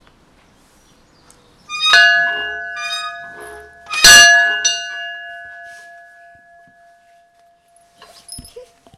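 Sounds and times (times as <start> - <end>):
school bell ringing: 1.7 - 7.0.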